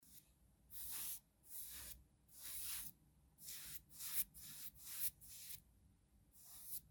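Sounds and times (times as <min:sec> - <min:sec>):
artist's or painter's brush on paper: 0:00.0 - 0:05.6, 0:06.4 - 0:06.9.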